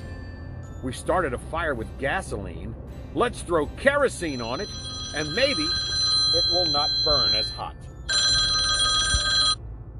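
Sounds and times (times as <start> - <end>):
speech: 0.8 - 7.9
loud shrill cell phone ringing from incoming call while driving: 4.2 - 9.6.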